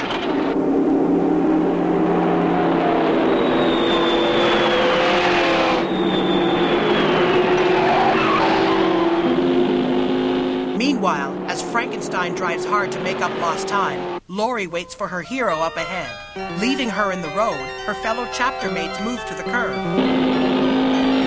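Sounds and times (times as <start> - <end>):
race car engine roaring: 0.0 - 14.2, 19.8 - 21.2
tires squealing as the race car skids and spins: 0.0 - 14.2, 19.7 - 21.2
speech: 12.8 - 20.4.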